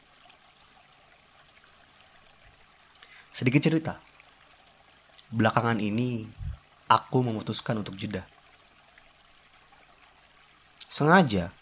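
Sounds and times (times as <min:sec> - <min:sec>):
gently flowing stream burbling: 0:00.0 - 0:11.6
speech: 0:03.4 - 0:04.1, 0:05.3 - 0:08.3, 0:11.0 - 0:11.6.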